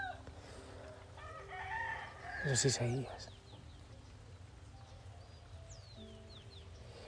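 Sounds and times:
small birds singing softly: 0:00.0 - 0:07.0
speech: 0:02.4 - 0:03.3.

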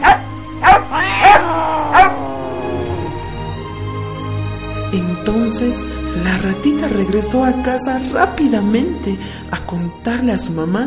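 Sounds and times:
hunting dog barking: 0:00.0 - 0:02.2
speech: 0:04.9 - 0:10.8.

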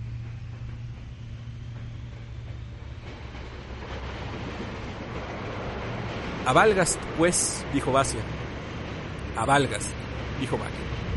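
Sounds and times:
rail clatter: 0:00.0 - 0:11.1
train pulling away after its doors close: 0:00.0 - 0:11.1
speech: 0:06.4 - 0:08.4, 0:09.4 - 0:11.0.

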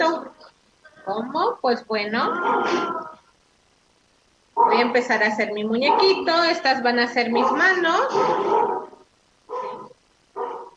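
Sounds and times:
speech: 0:01.0 - 0:03.2, 0:04.6 - 0:08.9
dog barking and growling: 0:02.2 - 0:03.3, 0:04.6 - 0:05.0, 0:05.7 - 0:06.6, 0:07.2 - 0:10.7.

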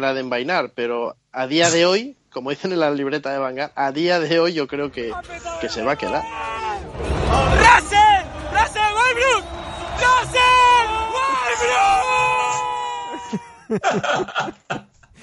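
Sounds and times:
speech: 0:00.0 - 0:08.0, 0:13.3 - 0:14.8
people shouting and yelling: 0:05.0 - 0:13.7
high-pitched whoops and shrieks: 0:05.1 - 0:13.7
laughter-like bursts: 0:13.1 - 0:15.2.

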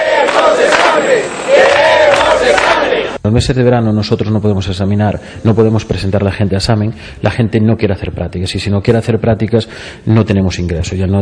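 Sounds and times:
large crowd chanting and shouting at a street protest at government office gates: 0:00.0 - 0:03.2
speech: 0:03.4 - 0:11.2.

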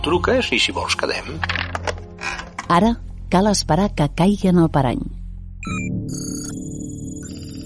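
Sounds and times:
speech: 0:00.0 - 0:01.7, 0:02.7 - 0:05.9
undercover telephone ringing with bright electronic trill: 0:05.6 - 0:07.6.

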